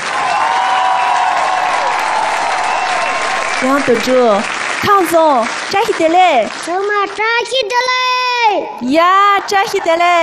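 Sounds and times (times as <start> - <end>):
large audience applauding: 0.0 - 7.6
speech: 3.6 - 10.2.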